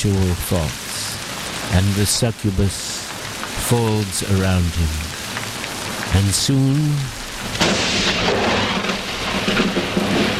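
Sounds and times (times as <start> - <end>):
speech: 0.0 - 0.9, 1.7 - 3.0, 3.7 - 5.1, 6.1 - 8.4, 9.4 - 10.3
heavy rain hissing: 0.0 - 10.3
thunder rumbling: 7.2 - 10.3.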